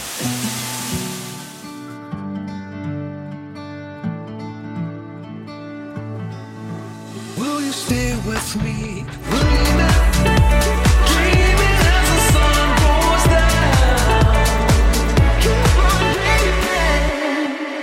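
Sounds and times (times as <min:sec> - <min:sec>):
rain: 0:00.0 - 0:02.0
music track with synths and a beat: 0:06.8 - 0:17.8.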